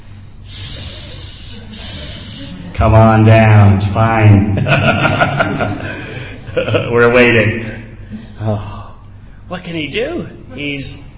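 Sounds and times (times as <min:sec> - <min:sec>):
voice imitating hissing snakes: 0:00.4 - 0:02.8
speech: 0:02.8 - 0:06.0, 0:06.6 - 0:08.8, 0:09.5 - 0:11.1
laughter: 0:04.4 - 0:07.2.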